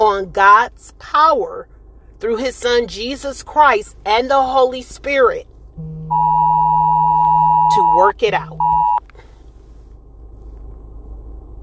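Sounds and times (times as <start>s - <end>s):
speech: 0.0s - 6.0s, 8.0s - 8.6s
low steady rumble: 0.0s - 11.6s
Amber alert phone emergency alert tone: 5.8s - 9.0s.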